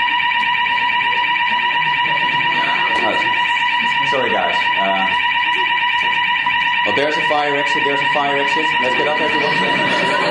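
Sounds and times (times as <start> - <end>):
building fire alarm blaring at a steady piercing pitch: 0.0 - 10.3
laughter: 1.8 - 4.0, 9.0 - 10.3
speech: 7.0 - 10.3.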